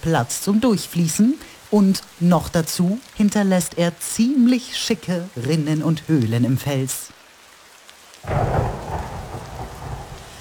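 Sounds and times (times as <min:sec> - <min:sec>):
speech: 0:00.0 - 0:07.2
heavy pouring rain: 0:00.0 - 0:10.3
deep thundery rumble: 0:08.2 - 0:10.3.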